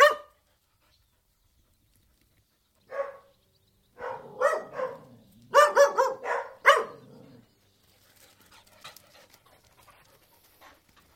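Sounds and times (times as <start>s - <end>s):
collie-Airedale cross dogs barking indoors: 0.0s - 0.4s, 2.9s - 3.3s, 4.0s - 7.2s.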